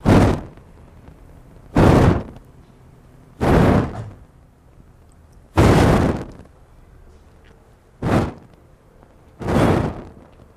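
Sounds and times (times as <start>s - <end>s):
blowing on torch: 0.0s - 0.6s, 1.7s - 2.4s, 3.4s - 4.2s, 5.6s - 6.5s, 8.0s - 8.6s, 9.4s - 10.3s.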